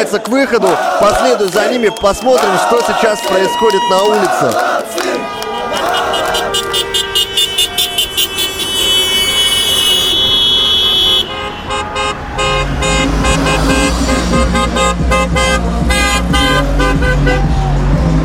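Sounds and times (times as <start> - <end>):
speech: 0.0 - 4.9
crowd of celebrating hockey fans cheering: 0.0 - 18.2
car horns honking in celebration on a blocked main road: 5.0 - 17.8
car engines idling: 5.2 - 18.2.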